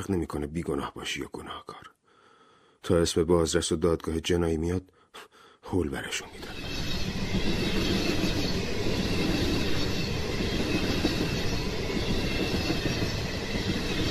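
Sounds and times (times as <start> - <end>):
speech: 0.0 - 1.8, 2.8 - 7.7
train clattering along the rails: 6.4 - 14.0.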